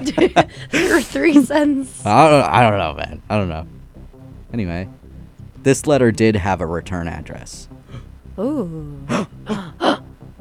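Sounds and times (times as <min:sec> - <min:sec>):
laughter: 0:00.0 - 0:01.8, 0:09.1 - 0:10.0
speech: 0:00.1 - 0:03.8, 0:04.5 - 0:05.0, 0:05.6 - 0:07.8, 0:08.4 - 0:10.0
person gasping sharply: 0:00.5 - 0:01.2, 0:07.9 - 0:08.1, 0:09.0 - 0:10.0.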